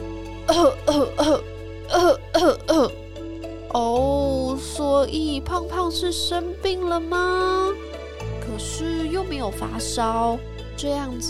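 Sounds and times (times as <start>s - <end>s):
harsh voiced coughing: 0.5s - 3.0s
speech: 0.5s - 3.0s, 3.7s - 7.8s, 8.6s - 11.2s.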